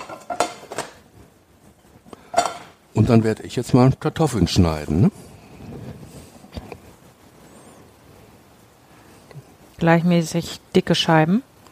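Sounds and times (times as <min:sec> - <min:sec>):
frying pan clanking on a stovetop: 0:00.0 - 0:01.0, 0:02.2 - 0:02.8
speech: 0:03.0 - 0:05.3, 0:09.8 - 0:11.5.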